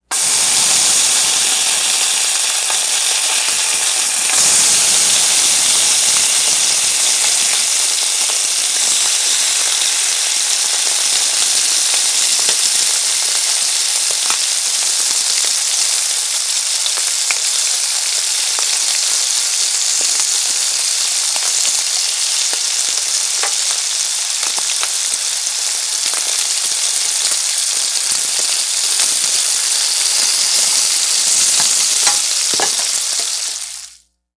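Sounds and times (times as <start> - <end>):
bacon frying: 0.0 - 34.0.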